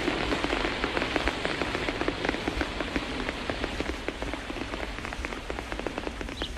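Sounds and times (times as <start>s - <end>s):
steady rain pattering on a leaf overhead: 0.0s - 6.5s.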